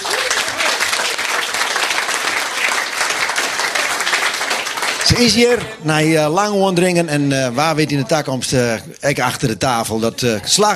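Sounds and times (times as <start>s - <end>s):
steady dense applause from a large audience: 0.0s - 5.9s
speech: 5.1s - 10.7s.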